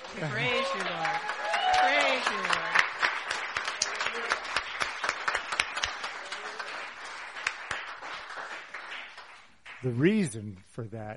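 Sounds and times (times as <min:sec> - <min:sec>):
crowd applauding: 0:00.0 - 0:10.4
speech: 0:00.2 - 0:01.0, 0:09.8 - 0:11.1.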